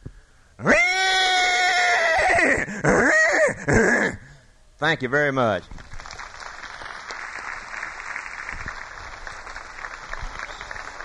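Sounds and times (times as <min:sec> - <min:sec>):
person imitating a horse whinny: 0:00.6 - 0:04.4
speech: 0:03.7 - 0:04.0, 0:04.8 - 0:05.8.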